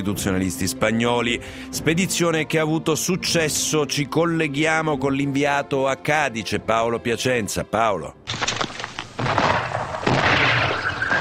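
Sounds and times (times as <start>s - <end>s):
speech: 0.0s - 8.3s
cannon fire booming with rolling rumble: 8.3s - 11.2s.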